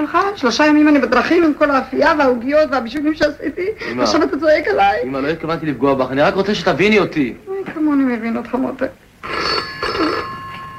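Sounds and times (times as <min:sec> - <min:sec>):
speech: 0:00.0 - 0:09.0
red rotary-dial telephone ringing: 0:09.2 - 0:10.7.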